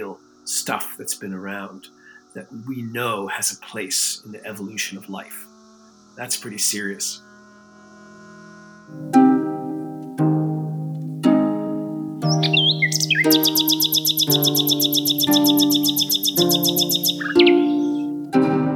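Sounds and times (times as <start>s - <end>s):
low sustained musical notes struck: 0.0s - 18.7s
speech: 0.2s - 5.5s, 6.2s - 7.3s, 8.9s - 9.2s, 14.3s - 17.4s
rapid bright bird trill: 12.2s - 18.2s.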